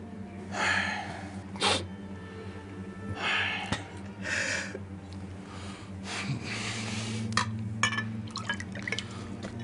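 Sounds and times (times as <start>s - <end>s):
steady low hum: 0.0s - 9.6s
water pouring into a glass: 8.3s - 9.2s.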